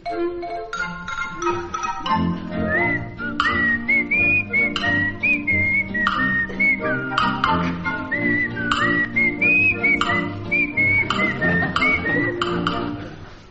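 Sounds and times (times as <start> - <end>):
steady instrumental backing music: 0.0 - 13.4
person whistling a bright bouncy melody: 2.5 - 12.6
laughter: 10.9 - 13.3.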